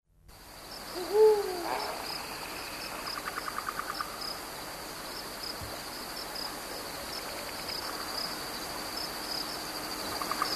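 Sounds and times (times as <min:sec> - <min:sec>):
insects chirping: 0:00.3 - 0:10.5
Eurasian eagle-owl call: 0:00.9 - 0:02.1.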